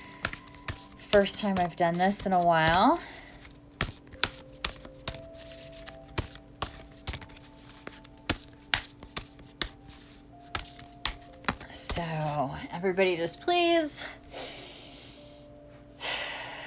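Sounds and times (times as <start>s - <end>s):
deck of cards being shuffled by hand: 0.0s - 12.4s
speech: 1.2s - 3.1s, 12.9s - 14.1s.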